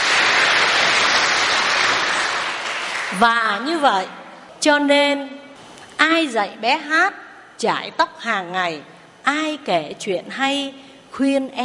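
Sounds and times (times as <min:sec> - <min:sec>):
crowd applauding: 0:00.0 - 0:03.4
speech: 0:03.2 - 0:05.4, 0:06.0 - 0:11.6.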